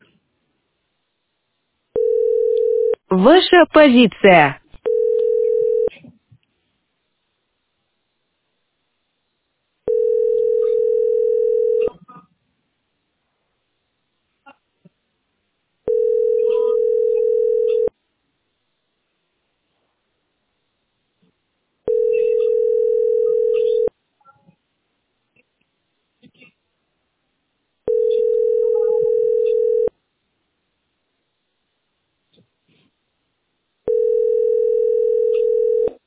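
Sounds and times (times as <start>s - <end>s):
telephone ringback tone on the line to a heating utility's billing centre: 2.0s - 3.0s, 4.8s - 5.9s, 9.9s - 11.9s, 15.9s - 17.9s, 21.9s - 23.9s, 27.9s - 29.9s, 33.9s - 36.0s
speech: 3.1s - 4.6s.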